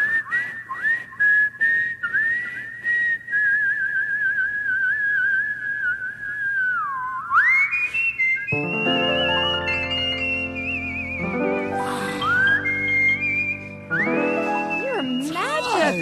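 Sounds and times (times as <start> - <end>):
person whistling a tune in long clear high notes: 0.0 - 16.0
fuller lower tones: 8.5 - 16.0.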